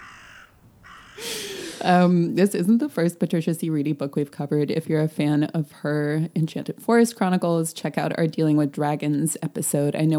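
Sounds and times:
raven croaking loudly: 0:00.0 - 0:02.4
speech: 0:01.2 - 0:10.1.

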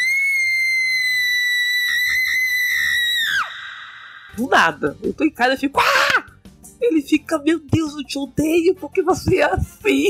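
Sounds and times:
woman screaming at a very high pitch: 0:00.0 - 0:04.4, 0:05.8 - 0:06.3
speech: 0:04.4 - 0:06.0, 0:06.8 - 0:10.0.

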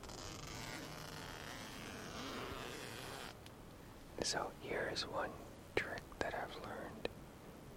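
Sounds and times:
tent door zipper being opened: 0:00.0 - 0:03.4
speech: 0:04.2 - 0:07.0.

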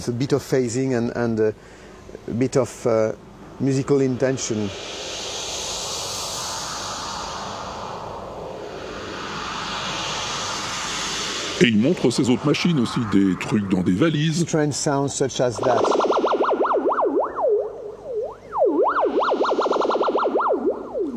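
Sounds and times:
speech: 0:00.0 - 0:05.0, 0:11.6 - 0:16.0
synthesized white noise: 0:00.0 - 0:21.1.

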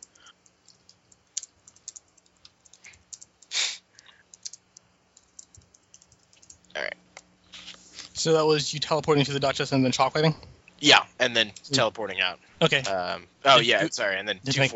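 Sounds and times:
typing on a computer keyboard: 0:00.0 - 0:06.7
speech: 0:08.2 - 0:14.7.

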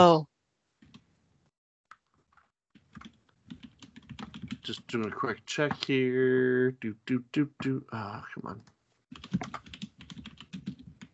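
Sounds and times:
speech: 0:00.0 - 0:00.3, 0:04.6 - 0:09.7
typing on a computer keyboard: 0:02.8 - 0:05.1, 0:09.1 - 0:11.1.

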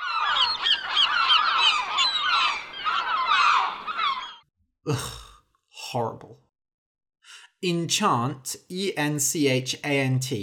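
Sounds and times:
flock of seagulls squawking: 0:00.0 - 0:04.4
speech: 0:04.9 - 0:05.2, 0:05.9 - 0:06.4, 0:07.6 - 0:10.4.

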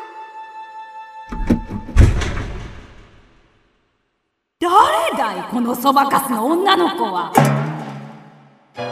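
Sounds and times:
house door opening with a rattle and click: 0:01.3 - 0:03.4
heavy house door thunk: 0:01.3 - 0:03.5, 0:07.4 - 0:08.6
speech: 0:04.6 - 0:07.7.

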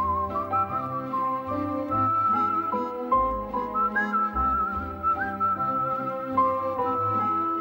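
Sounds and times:
whistled melody from film soundtrack: 0:00.0 - 0:07.6.

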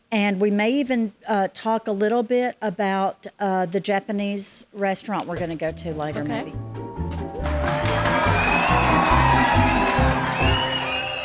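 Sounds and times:
speech: 0:00.1 - 0:06.8
big crowd of fans cheering and whooping: 0:07.4 - 0:11.2.

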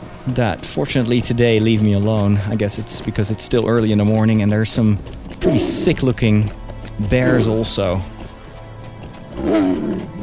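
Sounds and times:
speech: 0:00.2 - 0:08.1
lynx growling: 0:05.4 - 0:06.1, 0:09.4 - 0:10.2.

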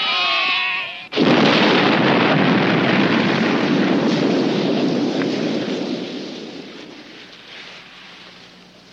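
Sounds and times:
sheep bleating: 0:00.0 - 0:01.1
dynamite explosion set off to seal a grave: 0:01.1 - 0:08.3.

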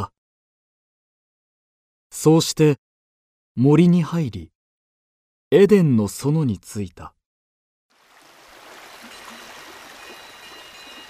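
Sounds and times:
speech: 0:02.2 - 0:02.8, 0:03.6 - 0:04.5, 0:05.5 - 0:07.2
flowing stream water: 0:07.9 - 0:11.0.

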